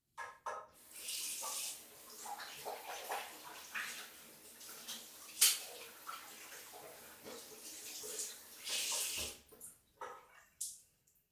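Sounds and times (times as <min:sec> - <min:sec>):
hands being washed: 0:00.8 - 0:09.7.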